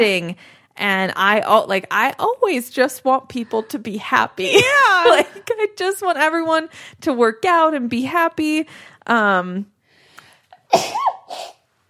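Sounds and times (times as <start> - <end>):
speech: 0.0 - 9.7, 10.7 - 11.6
sneeze: 10.7 - 11.6.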